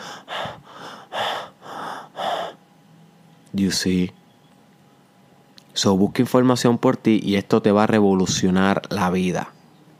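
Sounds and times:
person demonstrating centered breathing: 0:00.0 - 0:02.6
speech: 0:03.6 - 0:04.2, 0:05.8 - 0:09.6.

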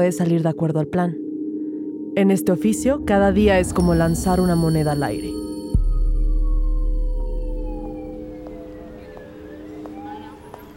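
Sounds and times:
speech: 0:00.0 - 0:01.2, 0:02.2 - 0:05.4
emergency vehicle sirens wailing: 0:06.1 - 0:10.7.

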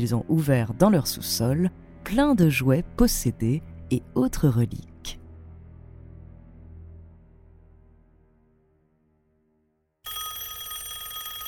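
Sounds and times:
speech: 0:00.0 - 0:05.2
low droning tone: 0:00.0 - 0:09.8
telephone bell ringing: 0:10.0 - 0:11.4.

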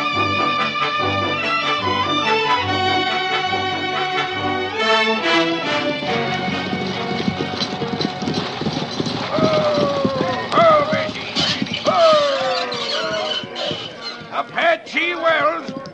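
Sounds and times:
horse hooves clip-clopping: 0:00.1 - 0:15.9
high squeaking whining tones: 0:06.1 - 0:14.5.

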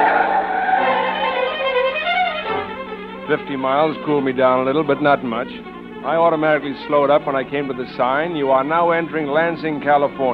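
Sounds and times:
car engine roaring: 0:00.0 - 0:10.3
car tires squealing as car peels away: 0:00.0 - 0:10.3
speech: 0:03.3 - 0:10.3.

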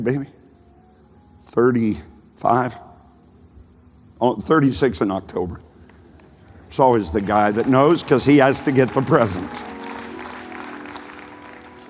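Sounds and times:
speech: 0:00.0 - 0:00.4, 0:01.5 - 0:02.9, 0:04.2 - 0:05.7, 0:06.7 - 0:09.7
church audience applause: 0:06.2 - 0:11.8.

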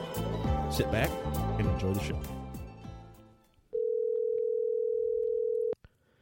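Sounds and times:
speech: 0:00.7 - 0:02.4
telephone ringing tone: 0:03.7 - 0:05.8.

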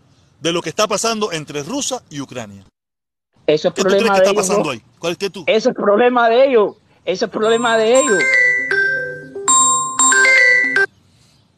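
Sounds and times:
speech: 0:00.4 - 0:02.7, 0:03.5 - 0:08.7
phone ringtone electronic melody from an incoming call: 0:07.4 - 0:10.9.

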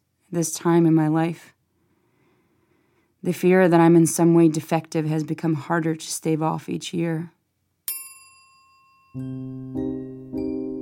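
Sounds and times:
speech: 0:00.3 - 0:01.6, 0:03.2 - 0:07.4, 0:09.2 - 0:10.4
bright bell ringing: 0:07.9 - 0:10.7.

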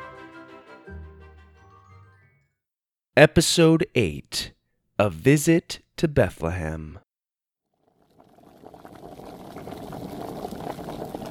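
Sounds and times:
speech: 0:03.2 - 0:07.0
water boiling in a pot in a kitchen while making apple cider: 0:07.9 - 0:11.2.

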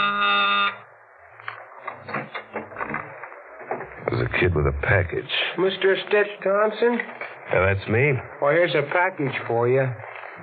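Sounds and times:
door buzzer: 0:00.0 - 0:00.8
speech: 0:04.1 - 0:10.1.

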